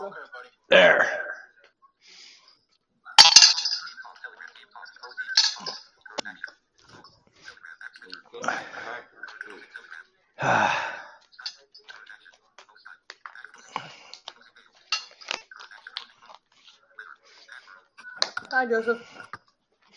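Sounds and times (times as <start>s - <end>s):
voices: 0.0s - 19.9s
dishes clanking while putting away supper: 3.2s - 4.1s, 5.4s - 5.8s, 14.9s - 15.4s
speech: 18.6s - 19.3s.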